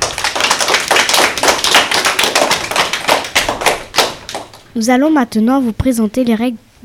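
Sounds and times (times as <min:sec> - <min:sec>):
group of young schoolchildren applauding: 0:00.0 - 0:04.6
speech: 0:04.8 - 0:06.7.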